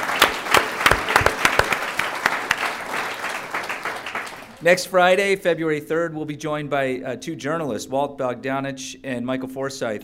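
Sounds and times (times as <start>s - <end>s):
room of people applauding: 0.0s - 4.8s
speech: 4.6s - 10.0s.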